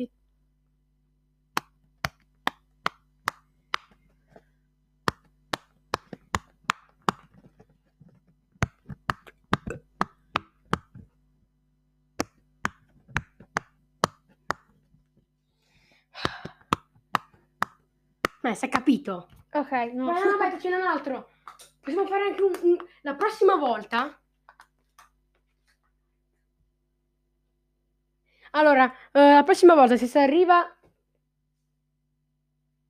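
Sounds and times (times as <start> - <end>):
faint steady hum: 0.0 - 32.8
silicone bubbles popping on a fidget toy: 9.1 - 10.8
speech: 18.4 - 24.2, 28.6 - 30.8.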